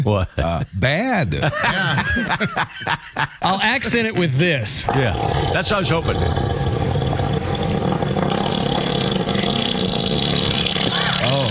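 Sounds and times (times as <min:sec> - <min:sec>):
speech: 0:00.0 - 0:06.8
laughter: 0:01.3 - 0:04.4
elephant fart: 0:04.9 - 0:11.5.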